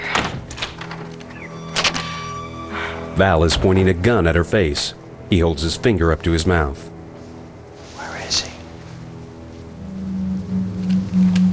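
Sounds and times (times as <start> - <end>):
apartment door being opened in a residential building: 0.0 - 2.6
steady low hum: 0.9 - 11.5
speech: 3.2 - 6.9.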